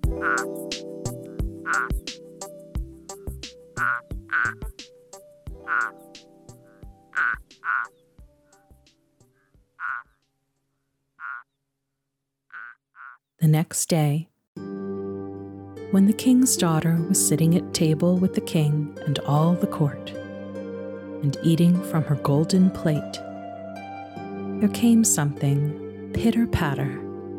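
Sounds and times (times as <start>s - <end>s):
turtle frog calling with short croaky pulses: 0.0s - 0.5s, 1.6s - 2.0s, 3.8s - 4.8s, 5.6s - 8.6s, 9.3s - 10.2s, 11.2s - 11.6s, 12.5s - 13.3s
speech: 13.4s - 14.3s, 15.9s - 20.2s, 21.2s - 23.3s, 24.6s - 27.0s.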